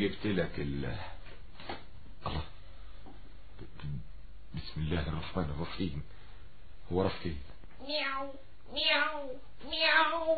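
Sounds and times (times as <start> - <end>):
speech: 0.0 - 1.2, 2.3 - 2.5, 4.6 - 6.2, 6.9 - 10.3
cat meowing in a desert: 7.8 - 10.3.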